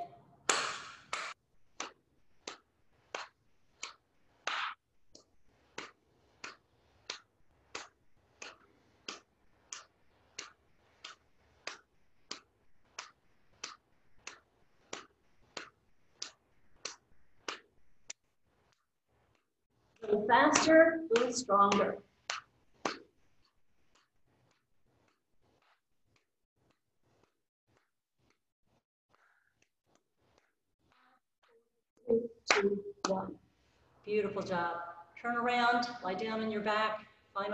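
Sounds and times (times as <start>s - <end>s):
yoga instructor's rhythmic hand claps pacing a breathing exercise: 0.0s - 28.4s, 32.4s - 33.4s
speech: 20.1s - 22.0s, 34.4s - 37.5s.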